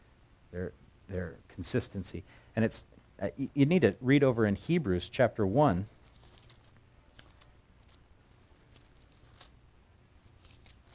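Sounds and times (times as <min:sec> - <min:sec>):
speech: 0:00.5 - 0:06.0
book pages being turned: 0:05.6 - 0:09.6, 0:10.2 - 0:10.9.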